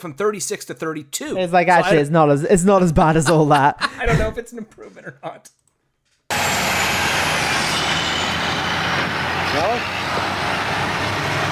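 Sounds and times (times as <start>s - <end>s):
speech: 0.0s - 5.6s, 9.5s - 10.4s
laughter: 3.1s - 5.4s
heavy trucks rumbling through a checkpoint: 6.3s - 11.4s
high squeal: 6.3s - 11.4s.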